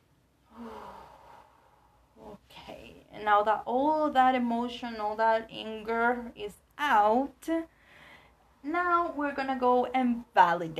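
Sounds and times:
deep breathing during stretching: 0.5 - 2.2
speech: 3.2 - 7.8, 8.6 - 10.7.

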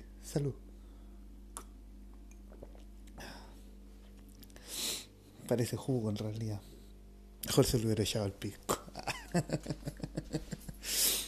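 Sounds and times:
speech: 0.3 - 0.7, 5.5 - 6.8, 7.4 - 11.0
mouth clicks: 1.5 - 3.2
slurping sip of a tequila margarita cocktail: 2.4 - 3.2
laughter: 8.9 - 10.8.

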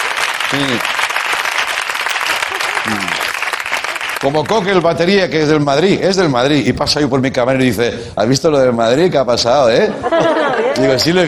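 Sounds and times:
audience applause: 0.0 - 5.0
speech: 0.5 - 1.0, 4.2 - 11.2
laughter: 2.1 - 4.2, 9.8 - 11.1.

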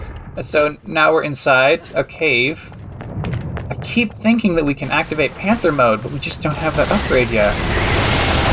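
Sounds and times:
speech: 0.4 - 2.8, 3.9 - 7.8
video game gunfire blasting through a wall of lava: 4.9 - 8.5.

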